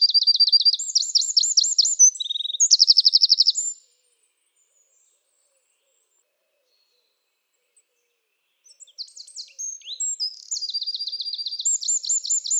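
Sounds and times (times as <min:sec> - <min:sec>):
Eurasian wren singing rapid high trills: 0:00.0 - 0:03.8, 0:08.7 - 0:12.5.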